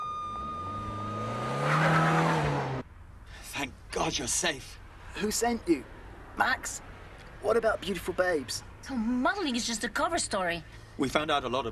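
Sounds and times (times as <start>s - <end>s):
tire squeal of accelerating car: 0.0s - 2.7s
car engine revving and accelerating hard: 0.1s - 2.8s
speech: 4.1s - 11.7s.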